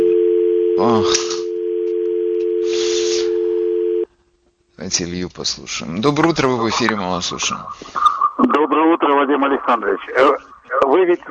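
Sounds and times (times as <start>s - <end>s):
telephone line signal of an incoming call on a live call-in line: 0.0s - 4.1s
speech: 0.8s - 1.4s, 4.9s - 11.3s.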